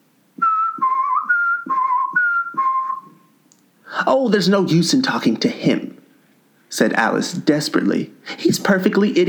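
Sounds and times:
footman whistling a short tune: 0.4 - 3.3
speech: 4.1 - 5.9, 6.8 - 9.2.

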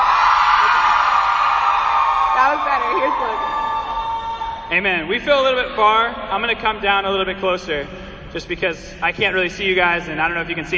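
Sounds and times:
large crowd of women screaming loudly: 0.0 - 4.7
speech: 4.7 - 10.7.

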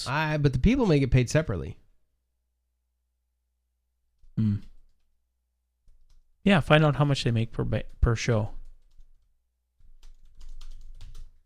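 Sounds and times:
speech: 0.0 - 1.8, 6.4 - 8.6
typing on a computer keyboard: 4.2 - 5.1, 5.8 - 6.4, 7.4 - 11.4.

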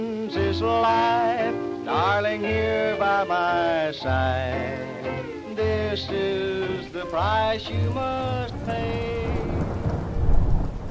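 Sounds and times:
speech: 0.0 - 5.3
heavy rain in a thunderstorm in Natchez Mississippi: 0.0 - 10.8
deep rolling thunder in Natchez Mississippi: 7.0 - 10.8.

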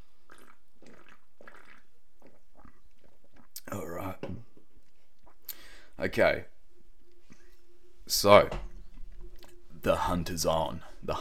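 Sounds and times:
person sipping an energy drink: 0.0 - 5.6
speech: 6.0 - 6.5, 8.1 - 8.7, 9.8 - 11.2.

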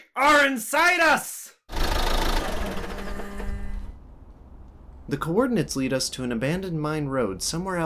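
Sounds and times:
speech: 0.2 - 1.5, 5.1 - 7.8
car engine running: 1.7 - 5.2.

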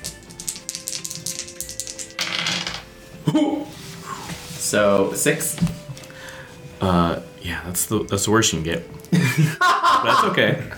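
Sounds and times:
two dice rattling and clattering: 0.0 - 2.9
speech: 3.3 - 3.8, 4.7 - 5.7, 6.8 - 10.7.

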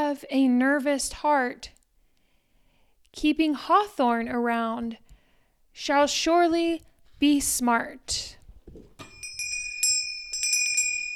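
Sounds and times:
speech: 0.1 - 1.8, 3.1 - 5.0, 5.8 - 8.9
bright ding-dong bell chime: 9.0 - 11.1.

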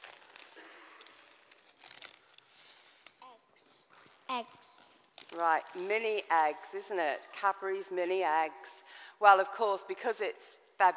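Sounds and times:
pink-themed wrapping paper crinkling as a gift is unwrapped: 0.0 - 6.7
speech: 4.3 - 4.7, 5.3 - 10.9.

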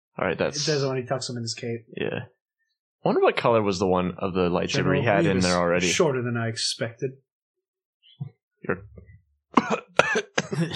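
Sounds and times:
speech: 0.2 - 2.4, 3.0 - 7.3, 8.2 - 10.7
two people coughing: 9.6 - 10.7.

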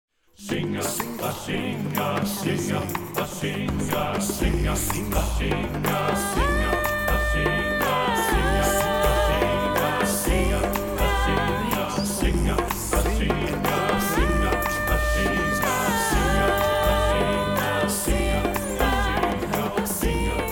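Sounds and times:
percussion: 0.2 - 20.5
SATB choir singing: 0.3 - 20.5.

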